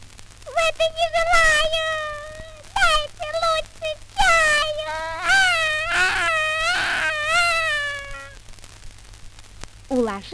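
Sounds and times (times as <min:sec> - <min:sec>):
faint noise: 0:00.0 - 0:10.3
child crying: 0:00.5 - 0:08.4
speech: 0:00.8 - 0:02.2, 0:10.2 - 0:10.3.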